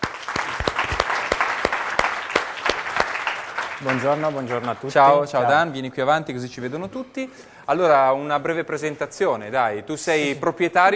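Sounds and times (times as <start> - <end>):
room full of people applauding: 0.0 - 5.3
speech: 3.8 - 10.9.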